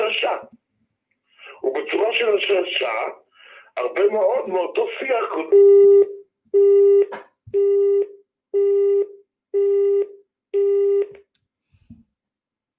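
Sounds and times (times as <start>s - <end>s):
speech: 2.0s - 3.2s, 3.8s - 7.8s
telephone signal tone beeps: 5.5s - 11.1s.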